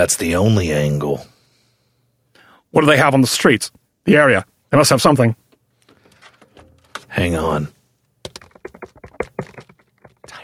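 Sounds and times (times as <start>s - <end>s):
speech: 0.0s - 1.3s, 2.7s - 5.4s, 7.2s - 7.8s
typing on a computer keyboard: 8.3s - 10.4s.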